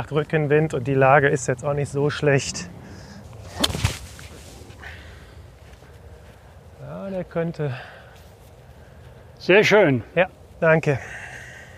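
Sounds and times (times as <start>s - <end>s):
speech: 0.0s - 2.8s, 7.2s - 8.0s, 9.4s - 11.2s
quiet outdoor background: 0.0s - 11.7s
seven iron golf club swish in warm weather with a tailwind: 3.3s - 4.8s.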